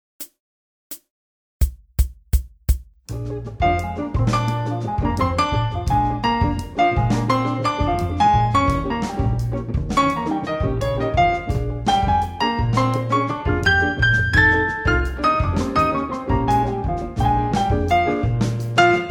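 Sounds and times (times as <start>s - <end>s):
blues salsa piano: 3.2s - 19.0s.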